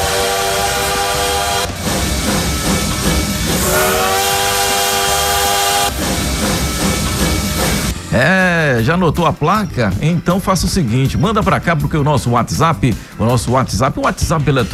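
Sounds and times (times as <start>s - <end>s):
train rumbling: 0.0s - 8.2s
speech: 8.2s - 14.7s.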